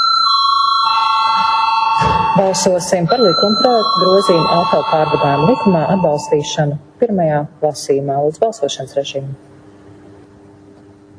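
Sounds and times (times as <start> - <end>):
electronic vote bell ringing in a parliament chamber: 0.0 - 6.8
speech: 2.4 - 9.5.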